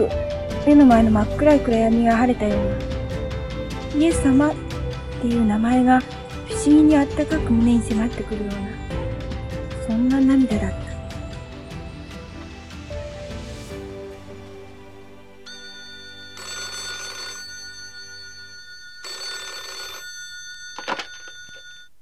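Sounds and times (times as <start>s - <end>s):
speech: 0.0s - 2.9s, 3.9s - 4.6s, 5.2s - 8.8s, 9.9s - 10.8s
soft sustained musical background: 0.0s - 18.7s
telephone ringing: 15.5s - 21.9s.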